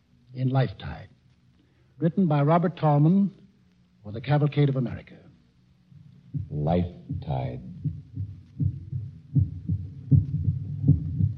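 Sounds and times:
speech: 0:00.4 - 0:01.2, 0:02.0 - 0:03.4, 0:04.0 - 0:05.2, 0:06.3 - 0:08.0
human heartbeat: 0:06.3 - 0:11.3.

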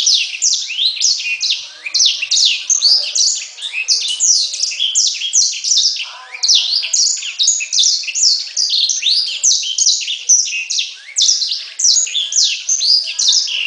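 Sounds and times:
bird song: 0:00.0 - 0:13.6.

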